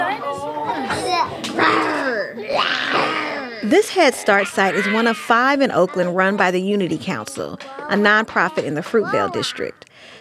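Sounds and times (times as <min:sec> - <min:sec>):
toddlers chattering and babbling around a table while molding Play-Doh at a childcare program: 0:00.0 - 0:09.9
speech: 0:03.6 - 0:10.1.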